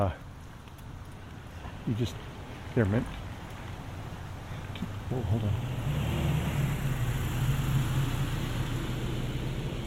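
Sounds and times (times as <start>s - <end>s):
speech: 0.0s - 0.2s, 1.8s - 3.2s, 5.1s - 5.7s
car passing by with road noise and engine rumble: 5.3s - 9.8s.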